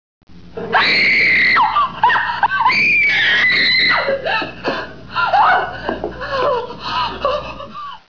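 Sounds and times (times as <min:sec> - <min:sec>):
person screaming: 0:00.6 - 0:04.2
laughter: 0:00.6 - 0:08.0.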